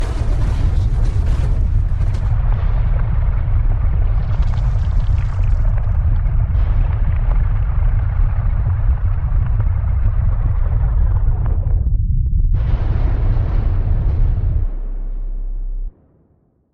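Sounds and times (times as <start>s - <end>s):
debris settling: 0.0s - 8.8s
earthquake rumble: 0.0s - 16.5s.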